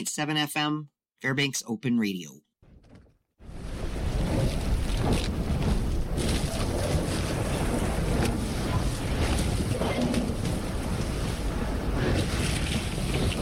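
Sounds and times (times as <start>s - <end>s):
speech: 0.0s - 2.5s
churning water from steel icebreaker ship in the Bering Sea: 3.4s - 13.4s
wind in the Bering Sea: 3.4s - 13.4s.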